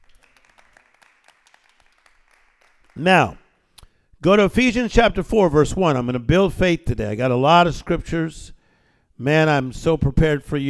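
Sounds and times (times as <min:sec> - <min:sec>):
small audience clapping: 0:00.0 - 0:03.7
speech: 0:03.0 - 0:03.4, 0:04.2 - 0:08.6, 0:09.2 - 0:10.6.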